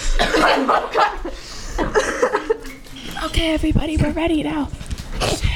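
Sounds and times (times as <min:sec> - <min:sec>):
person coughing: 0:00.0 - 0:00.7
speech: 0:00.2 - 0:02.3, 0:03.4 - 0:05.4
laughter: 0:00.3 - 0:02.8.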